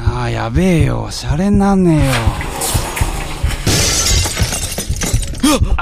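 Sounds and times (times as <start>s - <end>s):
speech: 0.2s - 2.5s
glass debris knocking as it settles: 2.0s - 5.7s
window glass shattering: 2.1s - 5.6s.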